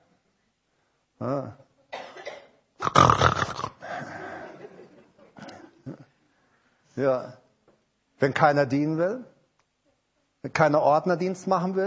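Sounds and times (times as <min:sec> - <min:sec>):
speech: 0:01.2 - 0:01.6, 0:07.0 - 0:07.4, 0:08.2 - 0:09.3, 0:10.4 - 0:11.8
person imitating snoring: 0:02.8 - 0:04.0
laughter: 0:03.8 - 0:06.0.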